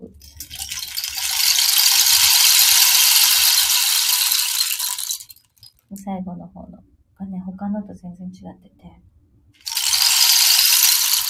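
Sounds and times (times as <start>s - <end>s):
rain stick tilted with beads cascading: 0.2s - 5.7s, 9.6s - 11.2s
speech: 6.1s - 9.0s.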